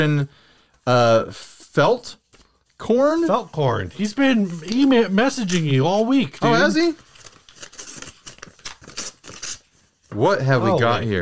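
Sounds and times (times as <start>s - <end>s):
speech: 0.0s - 2.2s, 2.8s - 7.1s, 10.1s - 11.2s
mail envelope holding a letter being torn open: 4.0s - 10.1s.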